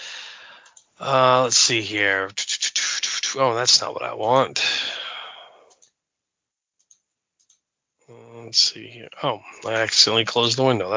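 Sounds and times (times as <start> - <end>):
soft breathy exhale: 0.0 - 0.8, 4.6 - 5.7
quick light computer mouse clicks: 0.6 - 0.9, 6.8 - 7.6
speech: 1.0 - 2.4, 3.3 - 4.8, 8.5 - 10.9.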